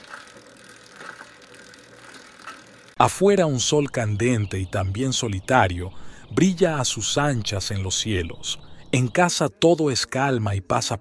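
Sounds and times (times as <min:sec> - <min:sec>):
bicycle freewheel ticking while coasting downhill: 0:00.0 - 0:03.0
speech: 0:03.0 - 0:10.9.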